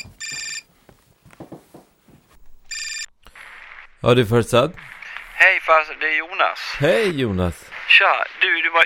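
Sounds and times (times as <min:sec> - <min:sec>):
phone ringing: 0:00.0 - 0:00.7, 0:02.7 - 0:03.1
speech: 0:04.0 - 0:08.8.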